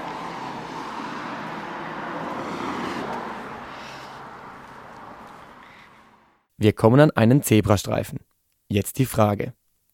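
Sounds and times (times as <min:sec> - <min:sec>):
dense street traffic of passing cars outside a front door: 0:00.0 - 0:06.4
speech: 0:06.6 - 0:09.6.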